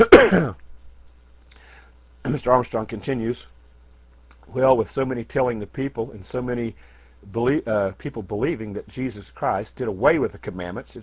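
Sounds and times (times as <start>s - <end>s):
person clearing throat: 0.0s - 0.6s
person coughing: 0.0s - 0.6s
speech: 2.3s - 3.5s, 4.5s - 11.0s.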